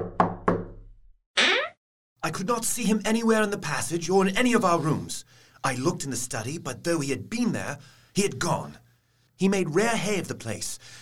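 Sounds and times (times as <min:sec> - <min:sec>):
firm knocking on a door: 0:00.0 - 0:00.8
speech: 0:02.2 - 0:08.8, 0:09.4 - 0:11.0.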